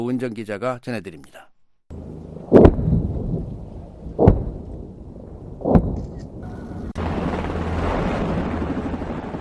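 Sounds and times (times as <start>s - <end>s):
speech: 0.0s - 1.5s
sharp target explosion with rumbling roar of blast noise and debris: 2.0s - 9.3s
heavy cannon shots from an armored vehicle: 2.5s - 7.0s.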